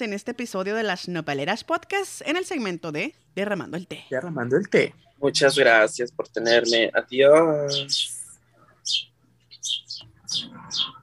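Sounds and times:
speech: 0.0 - 8.2, 8.8 - 11.0
small bird chirping in high-pitched bursts: 5.0 - 11.0.

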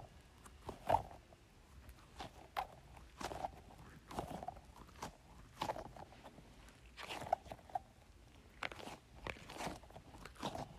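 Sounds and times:
squishy goo ball squeezed with wet squelches and crackly pops: 1.9 - 10.7.

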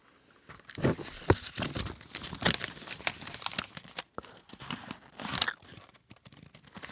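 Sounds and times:
paper being handled and crinkled in a studio: 0.6 - 6.9.

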